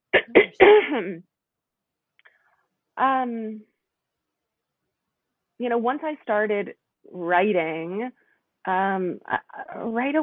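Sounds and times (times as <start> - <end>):
person clearing throat: 0.2 - 1.1
speech: 0.9 - 1.3, 3.0 - 3.7, 5.6 - 10.2.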